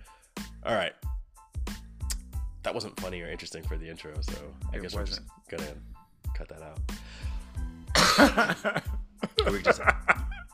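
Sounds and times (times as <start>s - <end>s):
speech: 0.7s - 1.0s, 2.6s - 7.3s, 8.2s - 10.2s
person coughing into a microphone: 8.0s - 8.6s
laughter: 8.2s - 10.5s.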